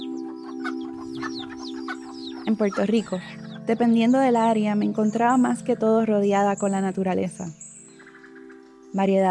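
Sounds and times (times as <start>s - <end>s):
hens and chicks clucking and peeping between road and hillside in Puerto Rico: 0.0s - 3.7s
speech: 2.5s - 7.6s, 8.9s - 9.3s.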